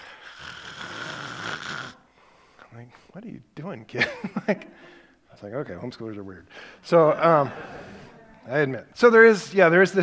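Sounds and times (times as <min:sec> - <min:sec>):
person imitating a child snorting: 0:00.0 - 0:02.1
speech: 0:02.8 - 0:10.0.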